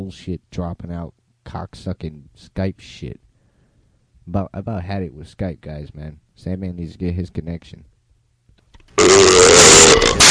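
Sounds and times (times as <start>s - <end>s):
speech: 0.1s - 3.2s, 4.3s - 7.9s
loud over-modulated distorted burp: 9.0s - 10.2s.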